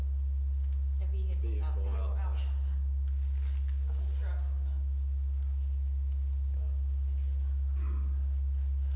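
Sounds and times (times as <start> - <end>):
voices and wavering tones from outside: 1.0 - 8.9
steady low hum made by people outside: 4.6 - 8.9.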